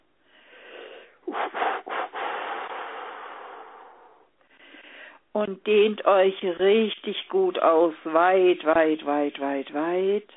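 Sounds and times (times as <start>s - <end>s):
deep breathing during a guided group relaxation exercise: 0.2s - 5.3s
speech: 5.4s - 10.3s.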